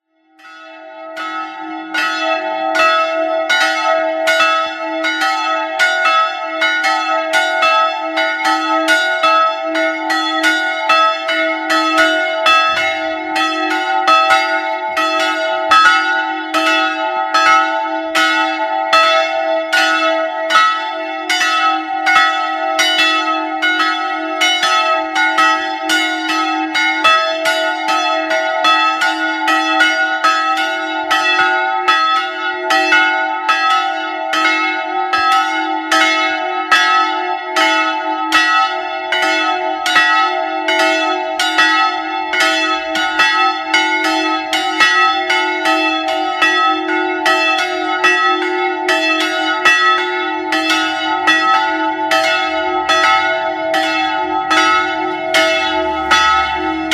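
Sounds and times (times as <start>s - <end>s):
multi-voice bell peal in E2 and F-sharp2 in Karlsruhe: 0.0s - 56.9s.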